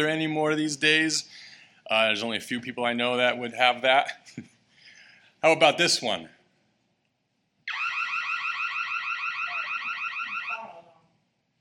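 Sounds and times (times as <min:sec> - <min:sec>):
speech: 0:00.0 - 0:04.5, 0:05.4 - 0:06.4
house burglar alarm ringing: 0:07.7 - 0:10.8.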